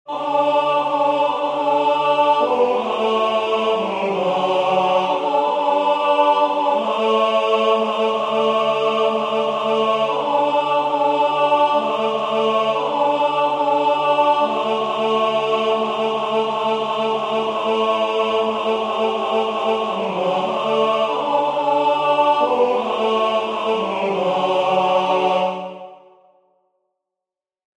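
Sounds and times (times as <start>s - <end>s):
tenor singing: 0.1s - 26.0s.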